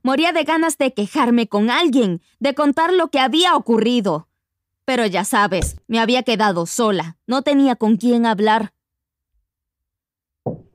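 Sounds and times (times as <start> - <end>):
speech: 0.0 - 4.3, 4.9 - 8.8, 10.4 - 10.7
faint low thud: 5.6 - 5.8
father knocking on a bedroom door: 5.6 - 5.8, 10.5 - 10.7.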